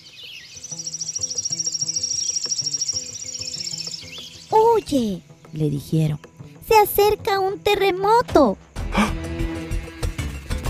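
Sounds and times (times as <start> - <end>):
birds chirping in a rapid high-pitched agitated trill: 0.0 - 5.5
speech: 4.8 - 9.2.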